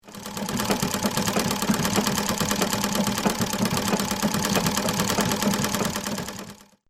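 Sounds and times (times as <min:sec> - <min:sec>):
household sewing machine running: 0:00.0 - 0:06.8.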